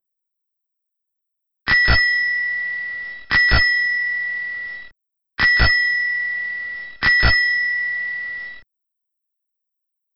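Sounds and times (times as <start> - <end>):
bicycle bell ringing: 1.7 - 8.6.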